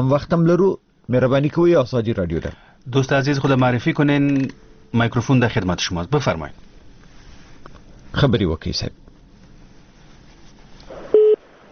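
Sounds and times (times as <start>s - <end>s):
speech: 0.0s - 6.7s, 8.1s - 9.0s
faint hiss: 0.0s - 11.7s
telephone line beep as the call is cut off: 11.1s - 11.4s.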